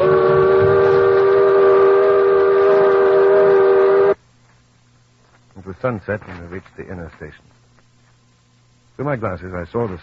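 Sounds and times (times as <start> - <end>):
steamboat steam whistle blowing: 0.0 - 4.2
faint low hum: 0.0 - 10.0
speech: 5.8 - 7.6, 9.0 - 10.0.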